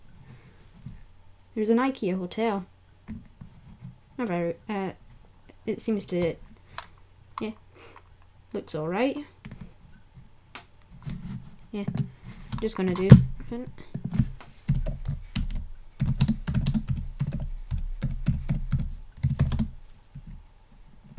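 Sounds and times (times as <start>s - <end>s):
speech: 1.6s - 3.2s, 4.2s - 5.0s, 5.6s - 6.4s, 7.4s - 7.6s, 8.5s - 9.4s, 11.7s - 13.9s
typing on a computer keyboard: 14.7s - 19.7s.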